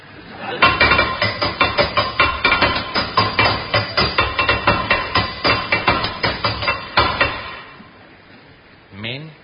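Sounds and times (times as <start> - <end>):
hammer banging on a metal tap: 0.6 - 7.8.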